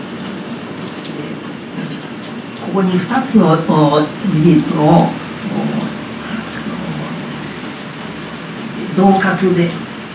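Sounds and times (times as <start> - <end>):
raindrops falling in a dense steady patter: 0.0 - 10.1
speech: 2.7 - 5.8, 9.0 - 10.0.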